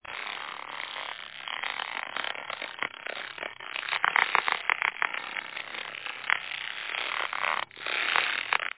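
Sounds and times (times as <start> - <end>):
rope pulled tight: 0.0 - 8.7.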